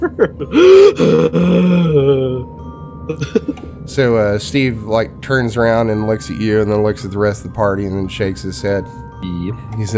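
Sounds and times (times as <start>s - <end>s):
speech: 0.0s - 2.5s, 3.1s - 9.9s
person gasping for air: 0.5s - 2.4s.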